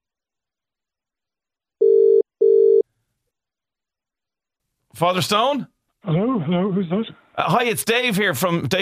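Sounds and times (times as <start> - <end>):
phone line ringing with double-burst ring tone: 1.8 - 2.8
speech: 5.0 - 8.7.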